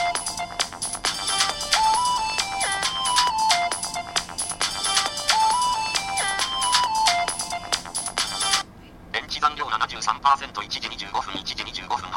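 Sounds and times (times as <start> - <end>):
phone ringtone for an incoming landline call: 0.0 - 8.6
speech: 10.2 - 12.1.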